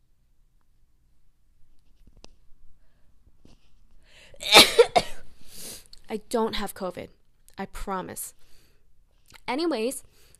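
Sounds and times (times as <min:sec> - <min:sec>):
person gasping: 0:04.0 - 0:04.5
person sneezing: 0:04.4 - 0:05.8
speech: 0:06.1 - 0:08.4, 0:09.5 - 0:10.1.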